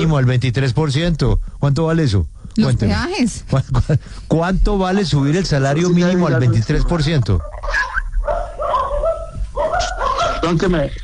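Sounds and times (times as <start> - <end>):
speech: 0.0 - 7.9, 10.4 - 11.0
small dogs barking and yipping: 7.4 - 10.8.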